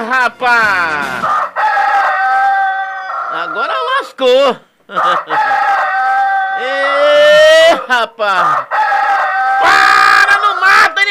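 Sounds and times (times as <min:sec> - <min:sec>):
speech: 0:00.0 - 0:01.4, 0:03.3 - 0:05.6, 0:07.7 - 0:08.7, 0:09.6 - 0:09.9
rooster crowing: 0:01.2 - 0:03.7, 0:04.9 - 0:07.2, 0:08.4 - 0:10.4.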